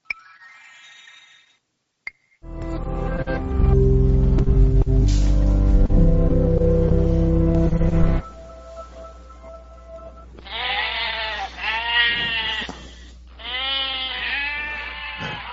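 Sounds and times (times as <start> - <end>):
low droning tone: 2.4 - 10.3
goats bleating loudly: 10.4 - 15.5.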